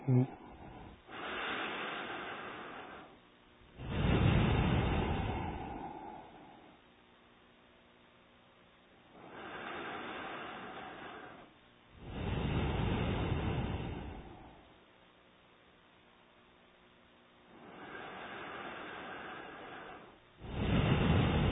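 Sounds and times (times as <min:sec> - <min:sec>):
speech: 0:00.1 - 0:00.4
breathing in and out through both nostrils: 0:00.5 - 0:03.2, 0:03.8 - 0:06.8, 0:09.2 - 0:14.7, 0:17.5 - 0:21.4.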